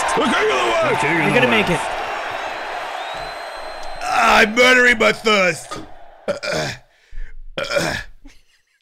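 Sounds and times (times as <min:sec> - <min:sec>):
speech: 0:00.2 - 0:02.0, 0:04.4 - 0:06.8, 0:07.6 - 0:08.1
loud drawn-out throaty burps: 0:05.7 - 0:06.8, 0:07.6 - 0:08.2.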